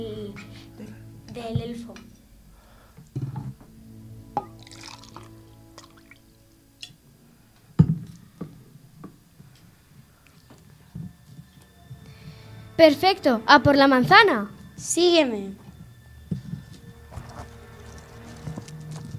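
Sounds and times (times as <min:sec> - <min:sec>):
speech: 0:01.4 - 0:02.1, 0:12.8 - 0:15.6
scattered water drips: 0:04.3 - 0:07.0
water trickling and gurgling into a small bottle: 0:04.4 - 0:06.4.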